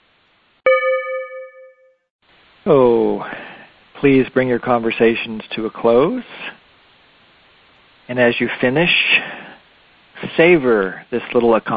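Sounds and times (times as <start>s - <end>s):
single bell struck to signal time: 0.7s - 1.9s
speech: 2.6s - 3.4s, 4.0s - 6.6s, 8.1s - 9.4s, 10.2s - 11.7s.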